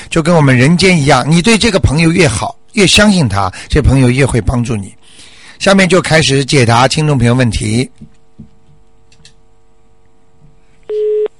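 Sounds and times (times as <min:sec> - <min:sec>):
speech: 0:00.1 - 0:05.0, 0:05.6 - 0:08.1
telephone busy signal beep as a phone call drops: 0:10.9 - 0:11.3.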